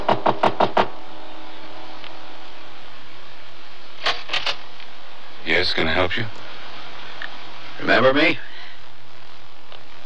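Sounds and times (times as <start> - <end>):
knocking on a front door: 0.0 - 0.9
quiet hum: 0.0 - 10.0
speech: 5.7 - 6.5, 7.8 - 8.5.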